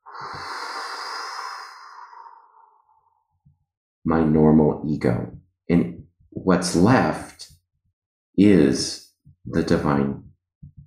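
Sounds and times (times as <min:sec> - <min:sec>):
forceful exhale through the mouth during meditation practice: 0:00.0 - 0:03.0
speech: 0:04.1 - 0:07.6, 0:08.4 - 0:10.3.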